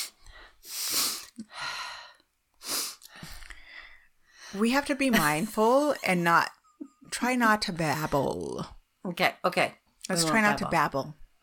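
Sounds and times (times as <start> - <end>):
sharp breathy sniffs: 0.0 - 1.4, 2.6 - 4.0
speech: 4.5 - 6.6, 7.2 - 11.4.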